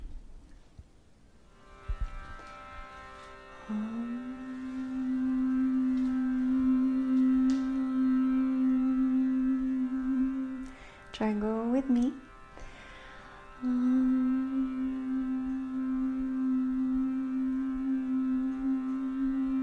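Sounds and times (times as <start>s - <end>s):
sustained drone: 1.5s - 11.2s, 11.9s - 19.6s
person humming one long steady note: 3.6s - 12.3s, 13.6s - 19.6s
speech: 3.7s - 3.9s, 11.2s - 12.3s.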